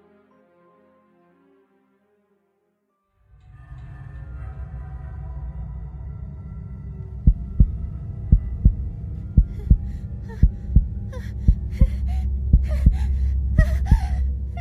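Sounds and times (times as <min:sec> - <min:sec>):
loud steady heartbeat: 0:07.2 - 0:14.5
woman's ragged heavy breathing: 0:09.3 - 0:14.5.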